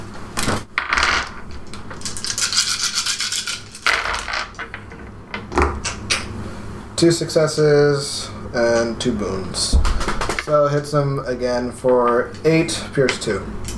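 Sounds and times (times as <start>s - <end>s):
four white dice rattling across a tabletop: 0.8s - 4.9s
speech: 7.0s - 9.9s, 10.5s - 13.7s.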